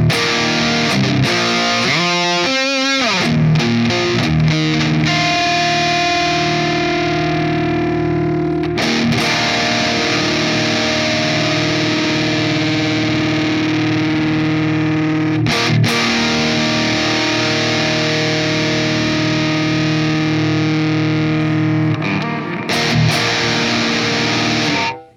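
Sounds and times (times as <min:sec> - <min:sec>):
distorted electric guitar through modulation pedal boosting the mids playing chords: 0:00.0 - 0:25.1.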